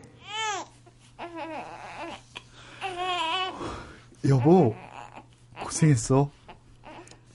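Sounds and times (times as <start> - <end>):
faint steady hum: 0.0 - 7.3
newborn baby crying: 0.2 - 3.6, 4.3 - 5.8, 6.5 - 7.2
speech: 4.2 - 4.9, 5.7 - 6.4.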